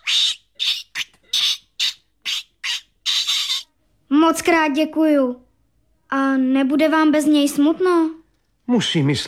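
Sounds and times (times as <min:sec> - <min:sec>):
young lory parrot squawking: 0:00.0 - 0:03.7
speech: 0:04.3 - 0:05.5, 0:06.1 - 0:09.2.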